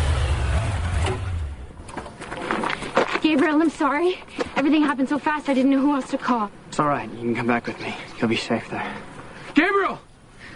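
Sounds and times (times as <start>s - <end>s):
motorcycle engine rumbling as it rides up: 0.0s - 2.7s
speech: 3.3s - 10.0s.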